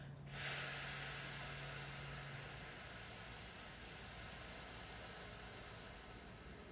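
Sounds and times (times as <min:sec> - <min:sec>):
slow exhaling breath during a breathing exercise: 0:00.0 - 0:06.7.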